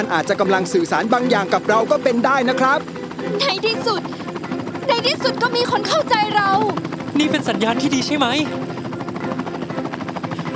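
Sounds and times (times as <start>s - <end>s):
speech: 0.0s - 4.3s, 4.9s - 8.7s
helicopter rotor thumping: 0.0s - 10.5s.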